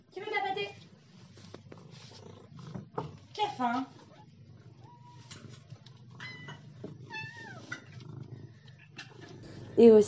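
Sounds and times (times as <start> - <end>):
low hum: 0.0 - 10.0
speech: 3.5 - 4.0, 9.8 - 10.0
several cats meowing for food: 4.0 - 9.7.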